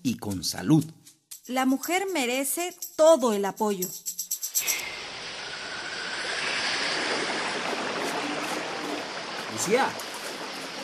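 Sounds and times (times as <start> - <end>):
speech: 0.1 - 4.1, 9.6 - 10.0
steady rushing of running water from a stream: 4.6 - 10.8.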